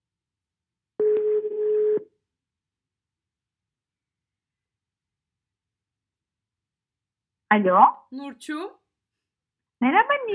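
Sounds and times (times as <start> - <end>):
telephone ringing tone during an outgoing call: 1.0 - 2.1
speech: 7.5 - 8.8, 9.8 - 10.3.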